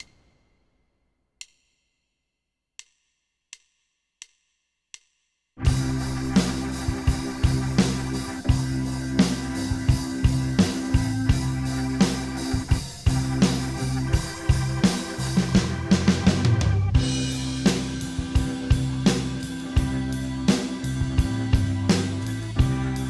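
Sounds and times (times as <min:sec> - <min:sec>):
C major chord backing track: 0:05.6 - 0:23.0.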